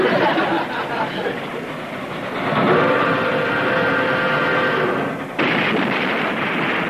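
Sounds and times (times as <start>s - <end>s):
laughter: 0.0s - 1.8s
circus train arriving on an old spur track in a park: 0.0s - 6.8s
sustained high squealing tone: 2.3s - 5.2s.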